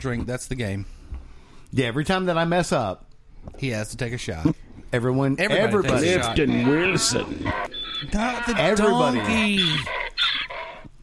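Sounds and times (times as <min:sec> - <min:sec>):
speech: 0:00.0 - 0:01.0, 0:01.7 - 0:10.0
person imitating a donkey bray: 0:05.8 - 0:10.5.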